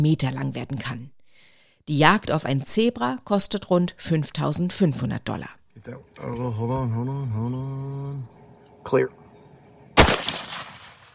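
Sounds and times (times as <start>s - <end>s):
speech: 0.0s - 1.2s, 1.9s - 9.2s
single loud sharp gunshot with decay: 10.0s - 11.1s.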